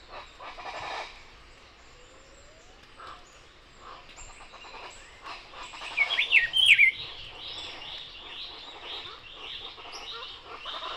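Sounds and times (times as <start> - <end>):
chatter of other birds in Barichara, Santander, Colombia: 0.0 - 10.9
Rufous-browed Peppershrike Cyclarhis gujanensis whistled song: 6.2 - 7.0.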